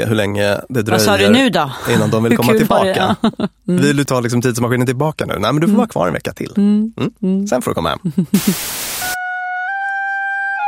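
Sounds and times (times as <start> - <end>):
speech: 0.0 - 9.2
brief burst of hiss: 8.4 - 9.2
simple homemade bagpipe drone of two sustained tones: 9.1 - 10.6.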